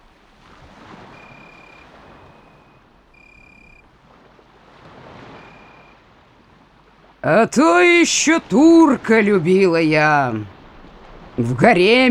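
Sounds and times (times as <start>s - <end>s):
surf rushing and swelling: 0.0s - 12.0s
wind gusts across the microphone: 0.0s - 12.0s
thin high wind whistle: 1.0s - 3.8s, 5.2s - 6.0s
speech: 7.2s - 10.5s, 11.4s - 12.0s.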